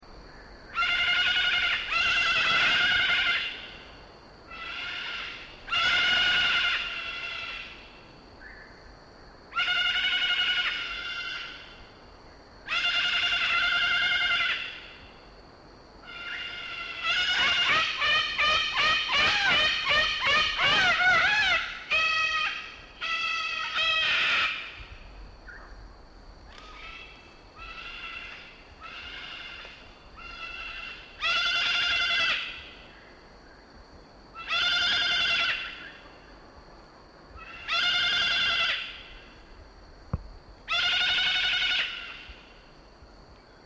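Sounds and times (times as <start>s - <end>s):
Cacatua moluccensis calling: 0.7s - 3.8s, 4.5s - 7.8s, 9.5s - 11.7s, 12.7s - 14.9s, 16.0s - 24.8s, 26.5s - 32.7s, 34.4s - 36.1s, 37.4s - 39.3s, 40.7s - 42.4s.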